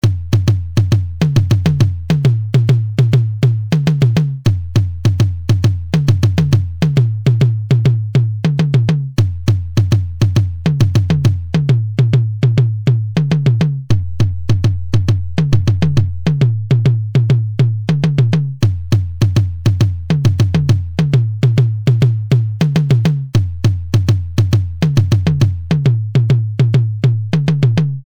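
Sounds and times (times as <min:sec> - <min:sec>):
filtered tom drum: 0:00.0 - 0:28.0.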